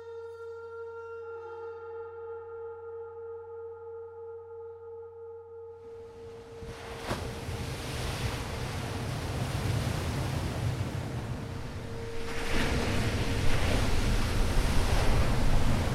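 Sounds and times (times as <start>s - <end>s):
squally gusty wind: 6.2s - 15.9s
waves crashing against coastal reefs: 6.3s - 15.9s.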